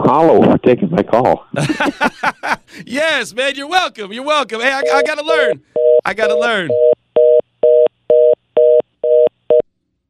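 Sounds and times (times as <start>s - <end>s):
speech: 0.1s - 7.0s
laughter: 1.6s - 3.0s
telephone dial tone beeping after hanging up: 4.8s - 9.6s.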